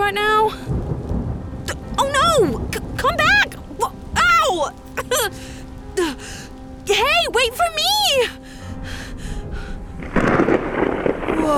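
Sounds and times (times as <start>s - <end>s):
thunder crack from a lightning strike: 0.0s - 4.7s, 10.0s - 11.5s
soft thunder rumbles: 0.0s - 11.5s
speech: 0.1s - 0.8s, 2.0s - 3.2s, 4.6s - 8.4s.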